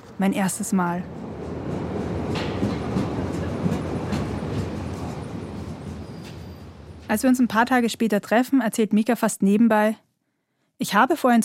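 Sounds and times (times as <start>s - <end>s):
subway train wheels clattering over the rails: 0.0s - 7.3s
subway train rumbling into a station: 0.0s - 8.2s
speech: 0.2s - 1.3s, 7.1s - 10.0s, 10.8s - 11.4s.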